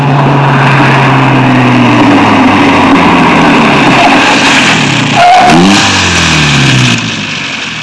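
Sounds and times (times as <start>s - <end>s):
Jaguar car: 0.0s - 7.8s.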